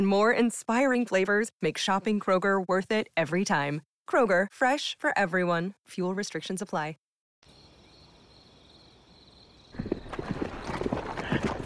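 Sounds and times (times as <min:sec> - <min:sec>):
speech: 0:00.0 - 0:07.0
hooves of a column of horses ridden hard clip-clopping: 0:09.7 - 0:11.6.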